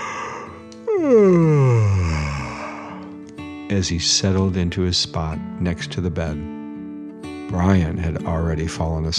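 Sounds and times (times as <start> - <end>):
narrator imitating a yawn: 0.0 - 3.1
speech: 1.0 - 1.4, 3.7 - 6.6, 7.5 - 9.1.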